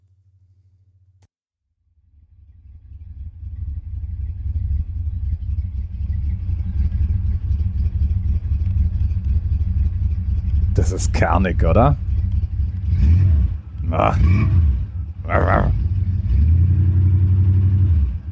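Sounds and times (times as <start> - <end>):
old V8 car engine revving: 2.5 - 18.2
speech: 10.8 - 12.1, 14.0 - 14.7, 15.3 - 15.8.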